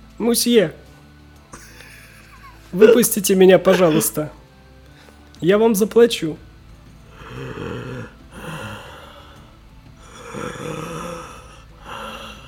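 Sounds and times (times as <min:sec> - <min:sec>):
speech: 0:00.2 - 0:00.8, 0:02.7 - 0:04.4, 0:05.4 - 0:06.5
laughter: 0:01.6 - 0:04.3
person mimicking heavy rasping breathing of a monster door mimic: 0:07.1 - 0:12.4.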